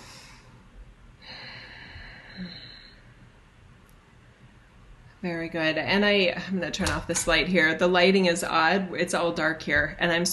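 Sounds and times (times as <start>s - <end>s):
breathing drawn deeply in and out through the nose: 0.0s - 3.1s
speech: 5.2s - 10.3s.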